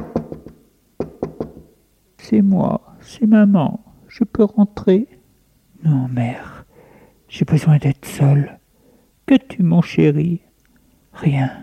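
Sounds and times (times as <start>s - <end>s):
firm raps knocking on a bedroom door: 0.0s - 1.7s
speech: 2.3s - 5.2s, 5.8s - 6.5s, 7.3s - 8.6s, 9.3s - 10.4s, 11.2s - 11.6s.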